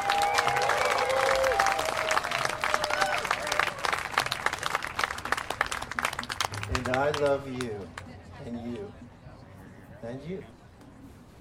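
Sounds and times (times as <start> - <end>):
crowd cheering: 0.0 - 7.2
audience applause: 0.0 - 7.7
speech: 7.0 - 9.0, 10.1 - 10.6.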